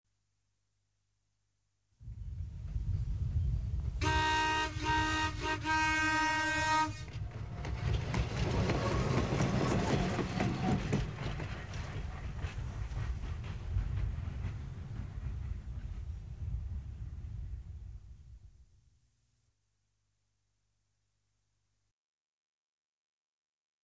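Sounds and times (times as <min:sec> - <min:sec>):
train passing: 0:02.1 - 0:18.4.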